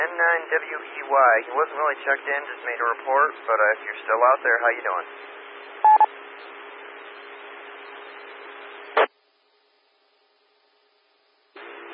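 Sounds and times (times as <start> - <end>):
amateur radio channel static hiss: 0.0 - 5.1, 8.9 - 9.2
speech: 0.2 - 6.5
touch-tone telephone dialing beeps through an amateur radio channel: 5.8 - 6.1.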